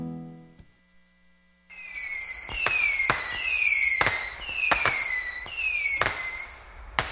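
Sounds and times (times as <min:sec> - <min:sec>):
volley of fireworks bursting with loud cracks: 0:01.7 - 0:07.1.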